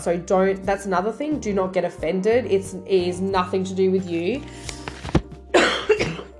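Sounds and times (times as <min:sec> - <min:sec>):
speech: 0:00.0 - 0:04.7
person coughing: 0:05.6 - 0:06.3.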